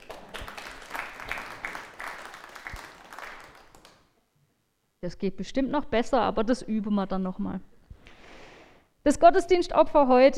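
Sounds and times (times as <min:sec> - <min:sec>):
audience applauding: 0:00.0 - 0:04.1
speech: 0:05.0 - 0:07.7, 0:09.0 - 0:10.3.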